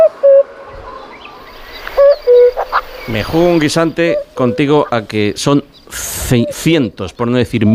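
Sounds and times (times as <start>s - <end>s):
common cuckoo calling: 0.0s - 7.7s
soft chirps: 0.3s - 6.6s
speech: 3.1s - 7.7s.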